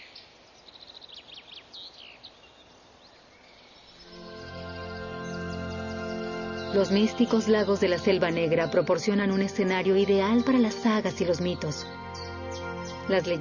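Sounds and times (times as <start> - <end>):
blackbirds singing in forest treetops: 0.0 - 13.3
steady harmonic musical tone: 4.0 - 13.3
speech: 6.7 - 12.0, 13.1 - 13.3.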